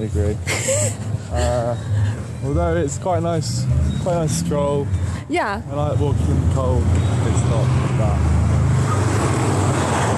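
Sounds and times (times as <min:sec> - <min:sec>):
speech: 0:00.0 - 0:08.6
fast car rushing past: 0:03.2 - 0:10.1.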